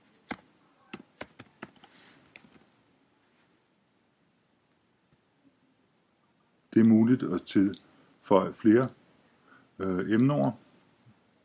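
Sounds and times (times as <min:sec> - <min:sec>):
typing on a computer keyboard: 0:00.3 - 0:02.6
speech: 0:06.8 - 0:09.0, 0:09.8 - 0:10.6.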